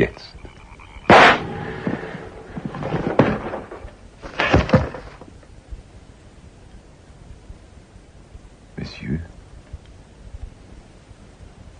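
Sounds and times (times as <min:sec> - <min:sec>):
speech: 0:00.0 - 0:00.4
pistol shot in a radio drama: 0:01.1 - 0:01.7
dull thuds and rumbling impacts: 0:01.1 - 0:05.8.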